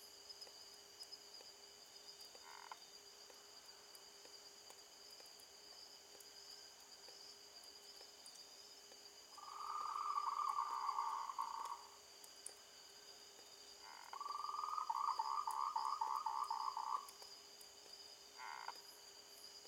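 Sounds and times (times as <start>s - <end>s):
faint background hiss: 0.0s - 19.6s
frog trilling at night: 9.4s - 11.9s, 13.8s - 17.1s, 18.4s - 18.8s.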